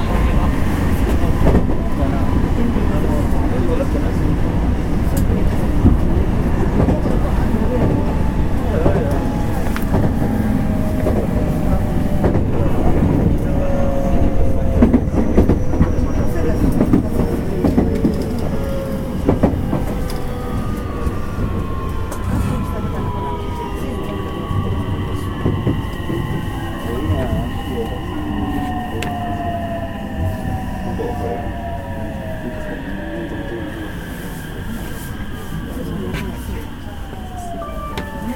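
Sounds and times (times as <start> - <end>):
rail clatter: 0.0 - 29.6
JR 225 series Special Rapid Service electric train running from Ashiya to Osaka: 0.0 - 38.3.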